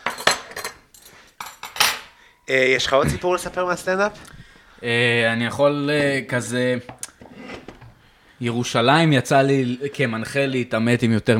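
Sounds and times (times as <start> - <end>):
metal spoon clinking against a dish of fish moqueca stew: 0.0 - 2.2
speech: 2.5 - 7.0, 8.4 - 11.3.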